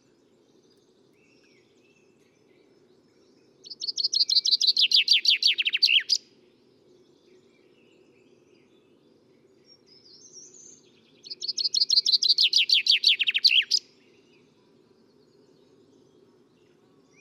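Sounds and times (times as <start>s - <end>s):
common chaffinch singing, Fringilla coelebs: 3.6s - 6.2s, 10.4s - 14.0s.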